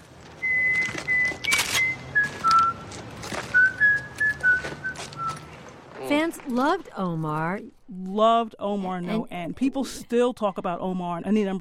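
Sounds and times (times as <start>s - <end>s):
man whistling a nursery tune: 0.4s - 2.8s, 3.5s - 5.5s
speech: 6.1s - 11.5s.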